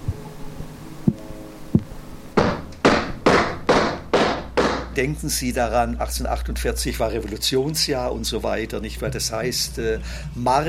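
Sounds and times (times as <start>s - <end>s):
dull thumps: 1.1s - 5.0s
sharp knocking raps: 1.8s - 5.1s
speech: 5.0s - 10.6s.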